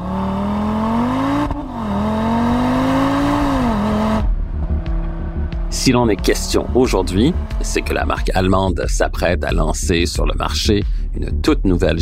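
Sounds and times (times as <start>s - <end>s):
Audi RS3 sport sedan five-cylinder engine revving: 0.0s - 9.0s
Audi RS3 sport sedan five-cylinder engine idling: 1.5s - 9.0s
speech: 5.8s - 12.0s.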